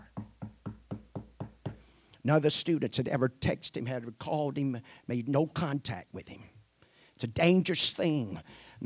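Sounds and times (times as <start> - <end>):
professor knocking on a wooden door: 0.0 - 1.8
speech: 2.2 - 6.5, 7.2 - 8.8.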